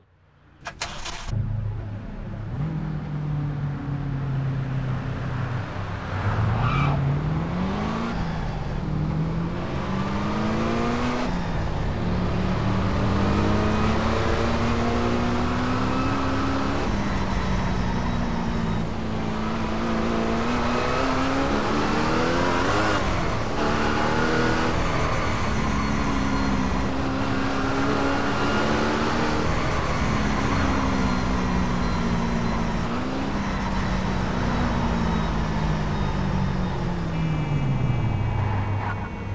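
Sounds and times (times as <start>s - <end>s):
Koenigsegg CC8S sports car engine: 0.4s - 39.3s.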